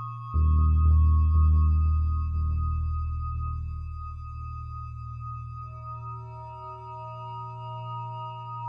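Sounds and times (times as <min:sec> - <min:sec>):
low pulsing experimental electronic drone hum: 0:00.1 - 0:08.6.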